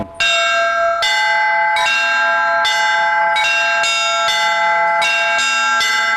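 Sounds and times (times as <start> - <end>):
church bells rung in a perebor sequence: 0.0 - 6.1.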